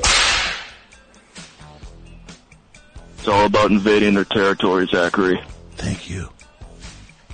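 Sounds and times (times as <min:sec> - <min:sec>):
whip crack: 0:00.0 - 0:00.9
speech: 0:03.2 - 0:06.4.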